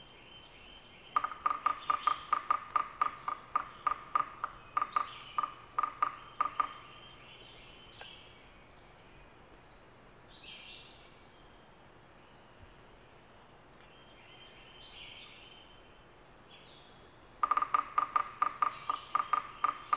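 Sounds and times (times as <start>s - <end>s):
Yellow-bellied Sapsucker Sphyrapicus varius: 1.0s - 8.2s, 17.4s - 19.9s.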